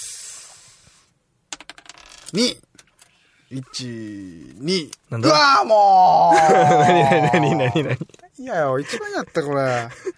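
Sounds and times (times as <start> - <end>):
dice rolling and bouncing on a surface: 1.5 - 2.6
speech: 2.3 - 2.7, 3.5 - 10.1
laughter: 6.2 - 10.1.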